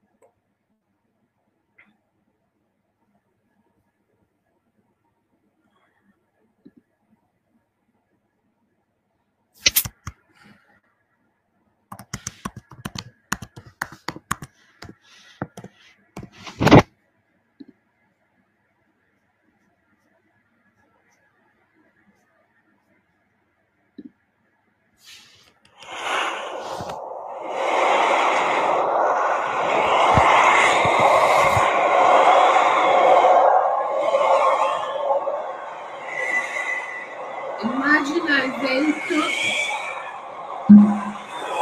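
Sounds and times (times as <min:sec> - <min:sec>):
clicks and handling noises: 0:09.6 - 0:10.2, 0:11.9 - 0:16.9
rush of wind: 0:25.8 - 0:41.6.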